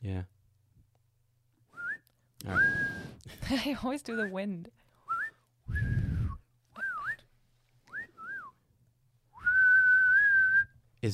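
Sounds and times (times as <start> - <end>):
speech: 0.0 - 0.3, 3.5 - 4.8
person whistling to call a horse: 1.7 - 3.2, 5.0 - 7.3, 7.9 - 8.6, 9.4 - 10.8
low breathy rumble: 5.7 - 6.4.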